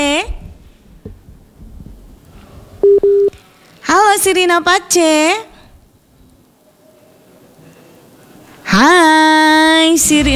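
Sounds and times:
faint low noise: 0:00.0 - 0:10.3
telephone line tone beeps as a call is picked up: 0:02.8 - 0:03.3
speech: 0:04.2 - 0:05.5, 0:08.8 - 0:09.2, 0:09.8 - 0:10.3.

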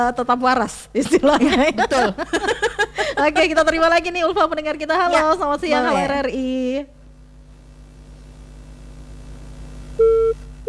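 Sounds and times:
laughter: 0:00.0 - 0:06.5
speech: 0:00.0 - 0:07.0
faint low hum: 0:00.0 - 0:10.6
telephone line tone after a call is cut off: 0:10.0 - 0:10.6.

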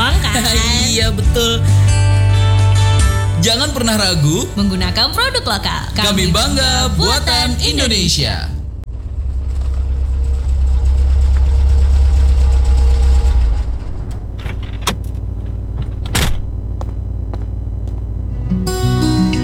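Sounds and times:
car engine idling: 0:00.0 - 0:19.4
speech: 0:01.3 - 0:01.8, 0:03.5 - 0:08.6
faint rattle: 0:08.3 - 0:18.3.

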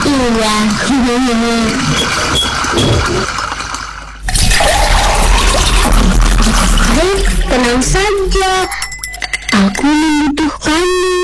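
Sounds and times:
water running from an open tap: 0:00.2 - 0:08.7
speech: 0:00.3 - 0:03.4, 0:07.6 - 0:08.9, 0:09.6 - 0:11.2.

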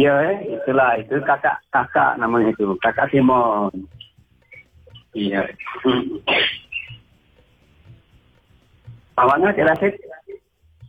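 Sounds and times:
speech: 0:00.0 - 0:04.0, 0:05.2 - 0:06.6, 0:09.2 - 0:10.2
person coughing: 0:05.9 - 0:06.7.

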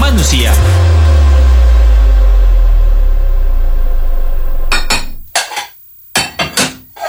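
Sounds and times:
low rumbling hum: 0:00.0 - 0:05.3
speech: 0:00.2 - 0:00.8.

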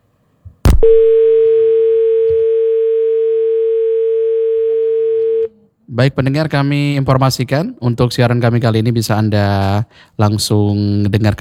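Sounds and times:
speech: 0:00.8 - 0:01.2, 0:06.0 - 0:11.3
telephone dial tone while a call is being placed: 0:01.2 - 0:05.5.

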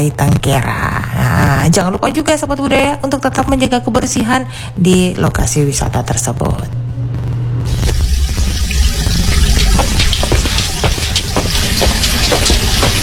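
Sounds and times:
speech: 0:00.0 - 0:06.8
water rushing from a wide-open tap fed by the mains supply: 0:07.7 - 0:13.0.

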